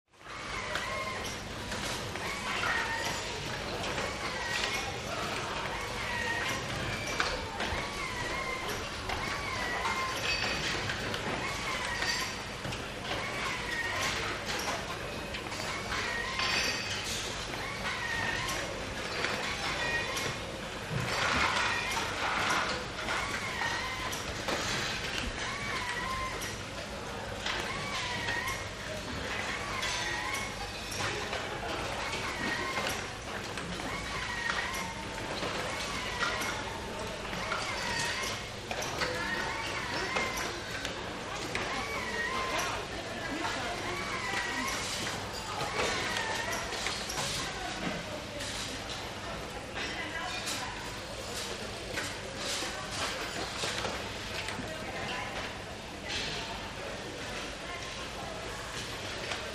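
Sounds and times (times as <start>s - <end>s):
large busy factory noise: 0.1s - 59.5s.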